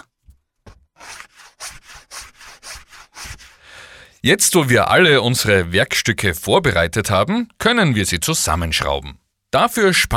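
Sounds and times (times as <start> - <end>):
sandpaper rasping on the edges of wooden feet: 1.0 - 3.6
speech: 4.2 - 10.1.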